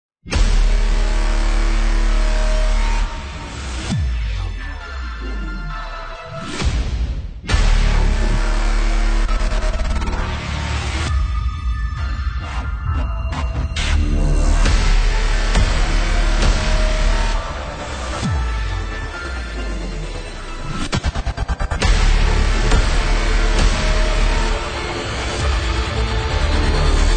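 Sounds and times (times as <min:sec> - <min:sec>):
epic music: 0:00.3 - 0:27.1.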